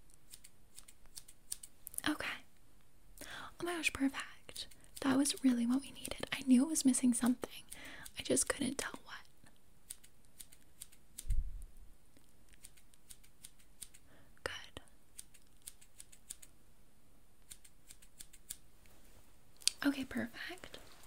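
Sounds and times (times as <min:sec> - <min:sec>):
hiss: 0:00.0 - 0:21.0
small scissors snipping to trim eyebrows: 0:00.1 - 0:02.0, 0:04.5 - 0:06.3, 0:09.9 - 0:11.4, 0:12.2 - 0:14.0, 0:15.1 - 0:16.5, 0:17.4 - 0:18.6
speech: 0:03.8 - 0:09.0, 0:20.2 - 0:20.6.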